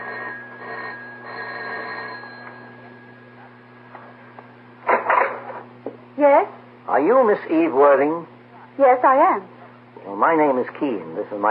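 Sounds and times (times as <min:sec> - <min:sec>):
doorbell ringing: 0:00.0 - 0:03.5
speech: 0:06.2 - 0:11.4.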